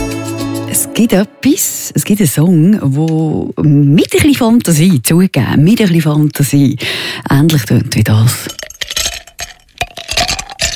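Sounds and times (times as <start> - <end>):
speech: 0.8 - 9.0
ice cubes clinking against a glass: 8.1 - 10.7.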